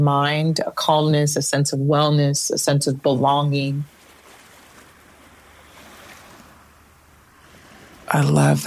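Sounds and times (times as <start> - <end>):
speech: 0.0 - 4.0, 8.1 - 8.6
faint windy hiss: 0.0 - 8.6
ocean surf rushing in a steady wash: 3.8 - 8.6.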